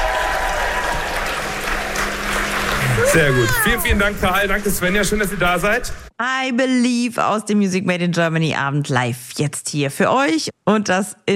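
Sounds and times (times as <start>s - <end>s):
crowd applauding: 0.0s - 5.9s
speech: 3.1s - 11.3s.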